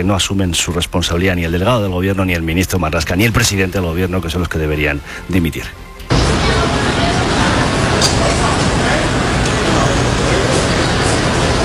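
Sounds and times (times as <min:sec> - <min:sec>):
speech: 0:00.0 - 0:05.8
dense city traffic on a busy Manhattan street in the morning: 0:06.1 - 0:11.6
faint indistinct voices: 0:06.1 - 0:11.6.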